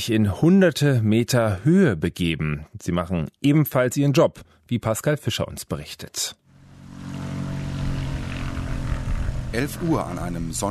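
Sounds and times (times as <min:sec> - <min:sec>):
speech: 0:00.0 - 0:06.4, 0:09.5 - 0:10.6
blue and white Cessna light aircraft propeller engine droning while landing on an asphalt runway: 0:06.5 - 0:10.6.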